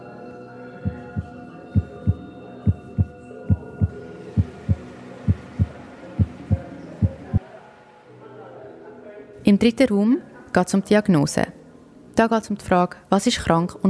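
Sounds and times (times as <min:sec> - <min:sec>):
amplified heartbeat at an exhibition listening station: 0:00.9 - 0:07.4
speech: 0:09.5 - 0:11.6, 0:12.2 - 0:13.8.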